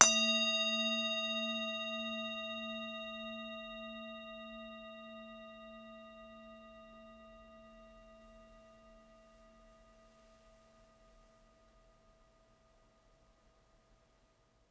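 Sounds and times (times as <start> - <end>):
bowl: 0.0 - 14.6.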